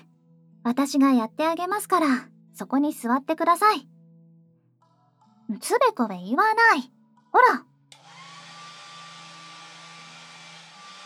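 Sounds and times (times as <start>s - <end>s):
speech: 0.6s - 3.9s, 5.5s - 7.7s
hair dryer blowing on hair: 8.0s - 11.0s.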